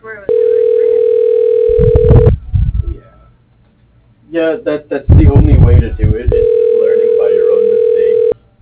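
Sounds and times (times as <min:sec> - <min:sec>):
telephone dial tone: 0:00.3 - 0:02.3, 0:06.4 - 0:08.4
speech: 0:04.4 - 0:06.4.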